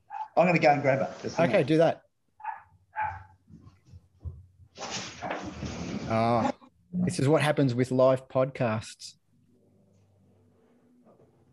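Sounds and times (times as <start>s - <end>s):
puppy put outside yapping: 0.1s - 0.4s, 2.4s - 3.4s
speech: 0.4s - 2.0s, 6.1s - 9.2s.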